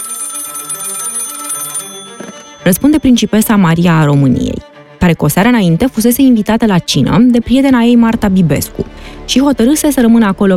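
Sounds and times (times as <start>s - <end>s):
old-fashioned telephone bell ringing with a metallic trill: 0.0s - 3.8s
speech: 2.6s - 10.5s.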